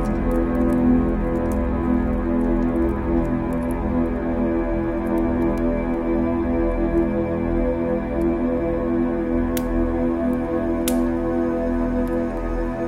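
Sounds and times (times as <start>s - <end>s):
fire crackling in a fireplace: 0.0s - 12.8s.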